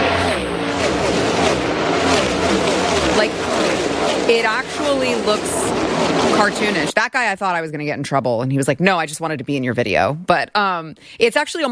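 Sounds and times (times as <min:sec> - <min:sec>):
race car engines roaring as cars speed past on a track: 0:00.0 - 0:06.9
indistinct voices: 0:02.2 - 0:06.9
speech: 0:04.3 - 0:05.6, 0:06.4 - 0:11.6.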